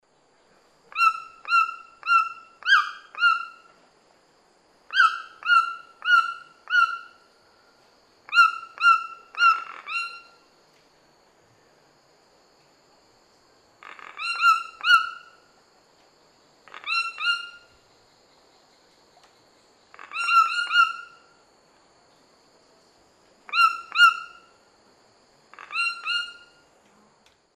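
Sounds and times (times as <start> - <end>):
Ramphastos tucanus duet: 0.9 - 3.7, 4.9 - 7.2, 8.3 - 10.4, 13.8 - 15.4, 16.6 - 17.8, 19.9 - 21.3, 23.5 - 24.5, 25.5 - 26.6.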